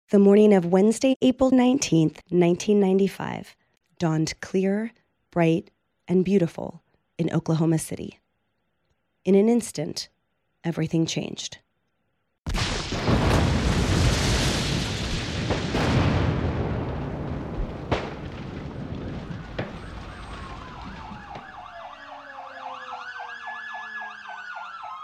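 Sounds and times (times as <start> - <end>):
speech: 0.1 - 8.2, 9.2 - 11.6
massive explosion at a federal building: 12.5 - 21.6
sharp crashes: 12.5 - 21.8
sirens wailing: 17.6 - 25.0.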